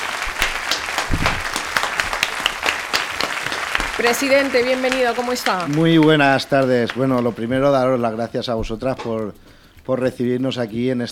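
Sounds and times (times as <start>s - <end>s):
audience applauding: 0.0s - 8.0s
speech: 4.0s - 11.0s.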